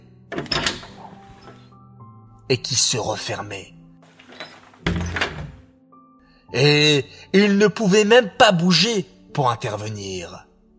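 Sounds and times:
door creaking open: 0.3s - 1.7s, 4.1s - 5.7s
speech: 2.5s - 3.8s, 6.5s - 10.5s.

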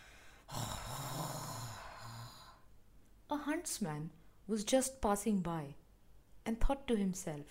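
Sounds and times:
loud rough throaty snoring: 0.5s - 2.6s
speech: 3.4s - 5.8s, 6.4s - 7.4s.

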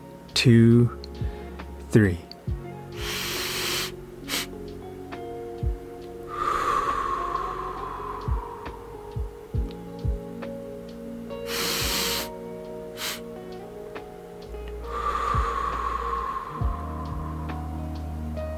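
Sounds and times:
steady low tone: 0.0s - 18.5s
speech: 0.4s - 1.3s, 1.9s - 2.3s
deep breathing in and out through the mouth: 3.0s - 4.6s, 6.3s - 9.6s, 11.5s - 12.4s, 13.0s - 13.3s, 14.8s - 18.0s.

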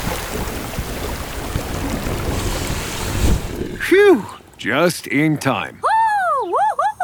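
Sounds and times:
water hose spraying water: 0.0s - 4.7s
speech: 3.9s - 5.9s.

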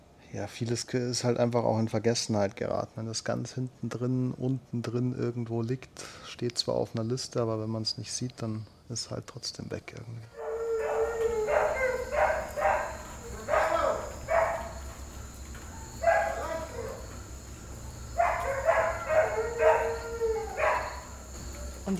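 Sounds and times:
speech: 0.3s - 10.4s
several dogs howling and yelping in the evening: 10.3s - 21.9s
steady high insect-like hum: 10.3s - 21.9s.

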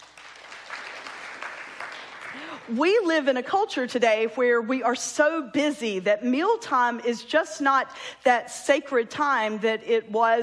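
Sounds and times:
audience clapping: 0.0s - 2.7s
speech: 2.4s - 10.4s.

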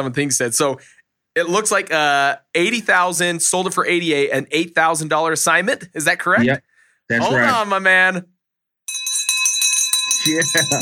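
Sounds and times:
speech: 0.0s - 8.3s, 10.2s - 10.7s
handheld victory bell ringing: 8.9s - 10.7s.

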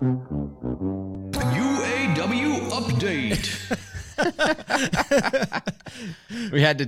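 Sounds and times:
brassy game show theme riff with full band: 0.0s - 3.6s
speech: 2.2s - 6.8s
laughter: 3.1s - 6.4s.

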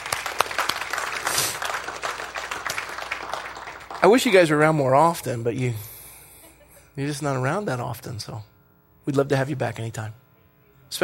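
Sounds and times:
crowd applauding: 0.0s - 4.7s
speech: 4.0s - 5.9s, 7.0s - 10.2s.

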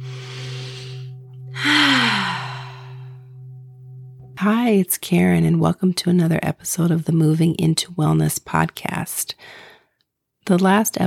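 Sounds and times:
deep breath in and out: 0.0s - 3.4s
steady low hum: 0.0s - 6.6s
speech: 4.4s - 9.7s, 10.4s - 11.0s.

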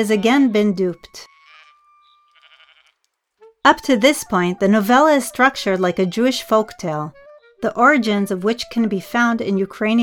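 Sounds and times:
speech: 0.0s - 1.3s, 3.6s - 10.0s
goat bleating: 0.0s - 3.6s.

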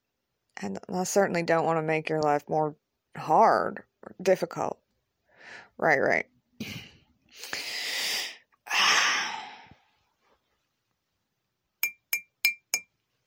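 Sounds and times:
speech: 0.6s - 4.8s, 5.4s - 6.8s
spoon clinking against a cup after stirring a drink: 11.8s - 12.9s.

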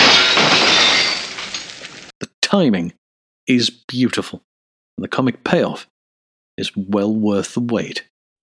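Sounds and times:
dense spray of tinkling glass shards: 0.0s - 2.0s
glass pane on a sidewalk shattering: 0.0s - 2.1s
speech: 2.5s - 5.9s, 6.6s - 8.1s.

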